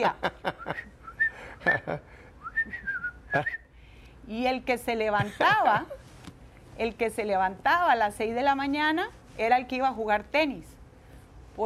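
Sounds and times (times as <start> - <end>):
speech: 0.0 - 0.4, 1.6 - 3.6, 4.3 - 6.0, 6.8 - 10.7
person whistling a short bouncy folk melody: 2.4 - 3.7.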